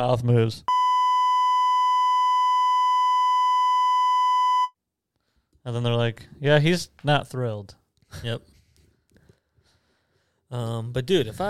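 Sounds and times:
speech: 0.0 - 0.7, 5.7 - 8.5, 10.5 - 11.4
censorship bleep tone: 0.7 - 4.8.

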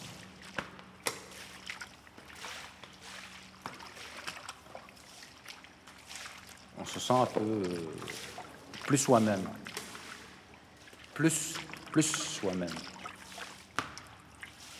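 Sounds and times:
low electrical hum: 0.0 - 14.7
sharp splashes and knocks: 0.0 - 14.7
water running in a shower room: 6.1 - 14.7
speech: 6.8 - 8.3, 8.9 - 9.8, 11.2 - 12.9.

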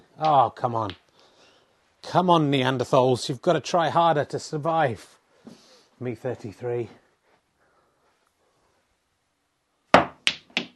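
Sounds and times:
speech: 0.2 - 1.0, 2.0 - 7.0
snooker ball struck and bouncing twice: 10.0 - 10.7.

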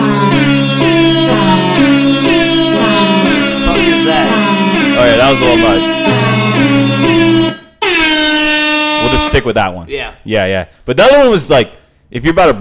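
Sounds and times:
air horn blasts playing a brassy droning tune: 0.0 - 9.6
speech: 9.4 - 12.6.

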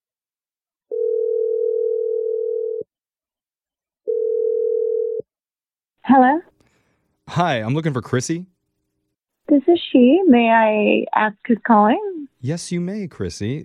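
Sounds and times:
long steady telephone ringing tones: 0.9 - 2.8, 4.0 - 5.2
speech: 7.4 - 8.5, 9.5 - 13.6.

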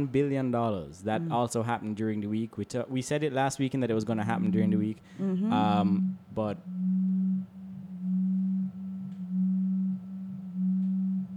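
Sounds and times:
speech: 0.0 - 6.8
phone vibrating on a table: 5.5 - 11.3.

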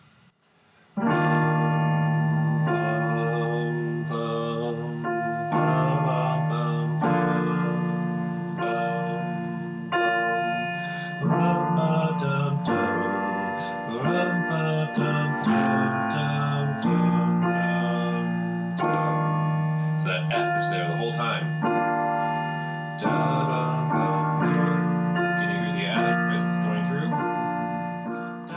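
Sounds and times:
sustained chords: 1.0 - 28.5
voice humming a melody: 2.2 - 22.3, 22.9 - 27.4, 28.0 - 28.5.

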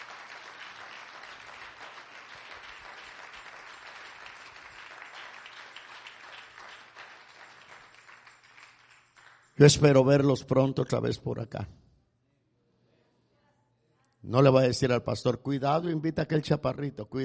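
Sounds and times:
church audience clapping as an offering of applause: 0.0 - 10.2
speech: 9.6 - 11.8, 14.3 - 17.2.

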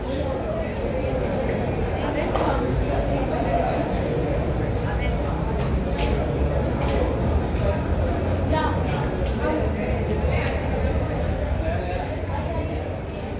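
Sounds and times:
overlapping student chatter in a university hallway: 0.0 - 13.3.

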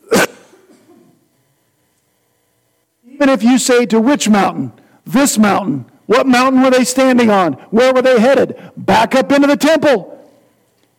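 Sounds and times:
sharp cough: 0.0 - 1.2
speech: 3.2 - 10.1.

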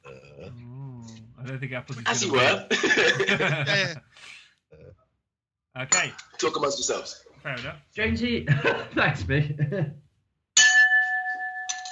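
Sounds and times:
speech: 1.5 - 4.4, 5.8 - 10.0
laughter: 2.4 - 4.2, 8.5 - 10.0
bowl struck like a bell: 10.6 - 11.9
soft clink: 10.6 - 11.9.

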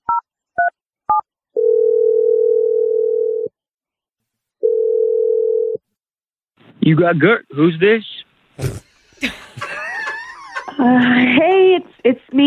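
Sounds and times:
steady phone ringback tone: 1.6 - 3.5, 4.6 - 5.8
speech: 6.9 - 8.7, 10.8 - 12.4
laughter: 9.0 - 11.8.

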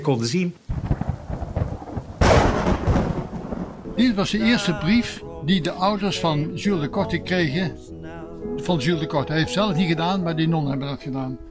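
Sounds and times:
speech: 0.0 - 0.7, 4.0 - 7.9, 8.6 - 11.4
thunder rumbling low with a sharp crack: 0.7 - 5.0.

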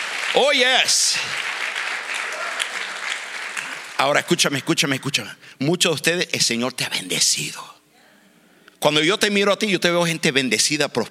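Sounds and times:
crowd at a religious worship gathering applauding: 0.0 - 5.0
speech: 0.3 - 1.6, 4.0 - 7.8, 8.8 - 11.1.

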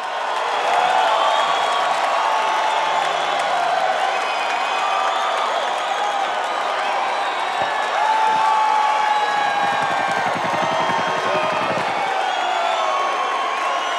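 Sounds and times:
large live concert audience cheering and applauding in Grand Rapids: 0.0 - 13.9.

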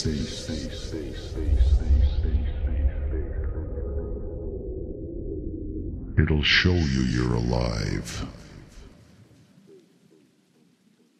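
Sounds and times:
speech: 0.0 - 0.5, 6.2 - 8.4
deep heavy bass throbbing: 0.0 - 8.2.

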